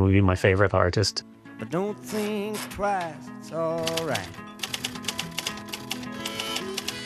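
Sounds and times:
speech: 0.0 - 4.5
typewriter keys clacking: 3.8 - 7.0.

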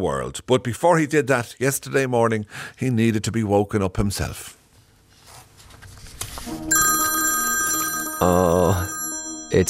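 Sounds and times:
speech: 0.0 - 4.6, 8.2 - 8.9
telephone ringing in the morning in Dublin with a call from New Jersey: 6.5 - 9.6.

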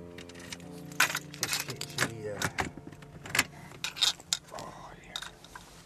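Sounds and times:
mobile home door latch clicks, knocks and rattles: 0.1 - 4.5
mobile home door creaking open with a drawn-out metallic creak: 0.1 - 5.6.

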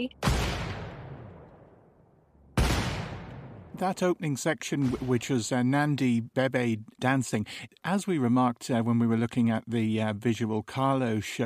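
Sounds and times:
speech: 0.0 - 0.4, 3.8 - 11.4
musical rendering of booming gunshot blasts: 0.2 - 1.9, 2.5 - 3.8, 4.8 - 5.3.

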